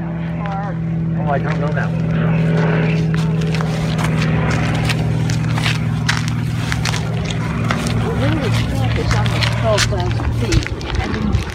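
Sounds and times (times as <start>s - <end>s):
gas-powered propeller airplanes droning overhead at a nature area: 0.0s - 11.5s
speech: 1.3s - 3.2s.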